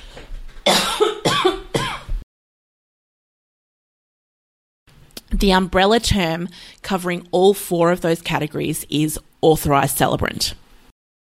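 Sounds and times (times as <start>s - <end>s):
person coughing harshly: 0.6s - 2.2s
speech: 5.4s - 10.6s.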